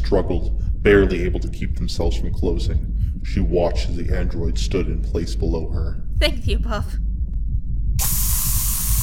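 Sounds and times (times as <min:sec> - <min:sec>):
low rumble: 0:00.0 - 0:08.0
speech: 0:00.1 - 0:07.1
loud hiss of freezing spray: 0:08.0 - 0:09.0.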